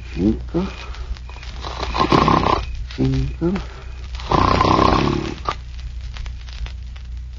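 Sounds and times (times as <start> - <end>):
man snoring while asleep: 0.2 - 0.9, 1.6 - 5.6
speech: 0.2 - 0.9, 3.0 - 3.8.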